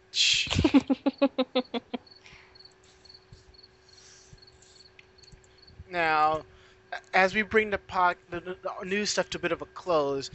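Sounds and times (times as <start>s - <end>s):
speech: 0.2s - 1.8s, 6.0s - 6.5s, 7.2s - 10.3s
crickets chirping: 2.0s - 5.8s.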